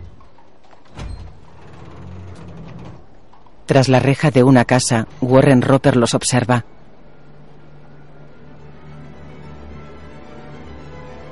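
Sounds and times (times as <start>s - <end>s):
small hatch window closing in a heavy armored door: 0.0s - 3.4s
heavy armored building door opening with a metallic clunk and grinding creak: 0.0s - 3.7s
speech: 3.7s - 6.8s.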